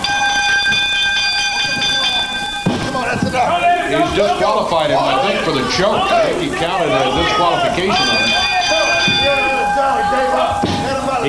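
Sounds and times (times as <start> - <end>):
wrestling ring bell clanging: 0.0 - 3.4, 7.3 - 11.2
crowd noise: 0.0 - 11.2
speech: 4.2 - 8.5.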